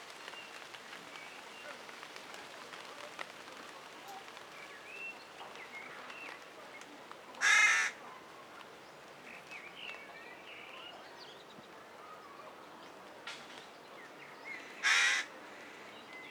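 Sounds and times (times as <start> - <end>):
carrion crow cawing: 7.4 - 8.0, 14.8 - 15.4.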